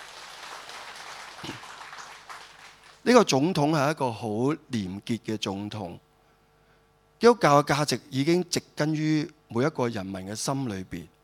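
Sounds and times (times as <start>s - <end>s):
audience applause during a sermon: 0.0s - 3.1s
speech: 3.0s - 6.0s, 7.2s - 11.1s.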